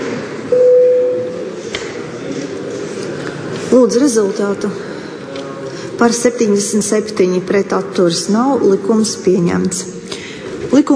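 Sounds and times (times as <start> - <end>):
low noise: 0.0 - 10.9
bell signal calling members to a vote in a parliament: 0.5 - 1.4
speech: 3.8 - 4.9, 6.0 - 10.1, 10.7 - 10.9.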